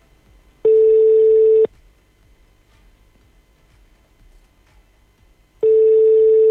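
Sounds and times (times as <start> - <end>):
telephone call tone beeps while a call is being placed: 0.7 - 1.7, 5.6 - 6.4.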